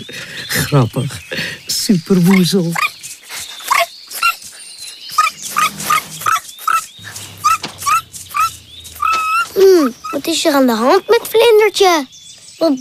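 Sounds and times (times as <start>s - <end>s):
speech: 0.0s - 1.2s, 1.9s - 2.9s, 10.4s - 12.7s
small dog barking and yipping: 2.3s - 10.3s.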